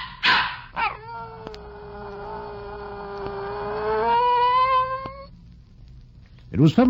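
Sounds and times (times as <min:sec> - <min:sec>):
dog barking: 0:00.0 - 0:01.0
dog howling: 0:00.2 - 0:05.4
speech: 0:06.6 - 0:06.8.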